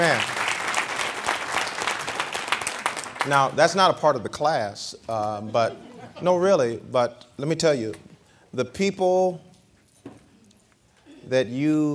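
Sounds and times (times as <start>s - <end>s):
speech: 0.0s - 0.4s, 3.2s - 9.5s, 11.3s - 11.9s
audience applause at a church class: 0.0s - 3.5s.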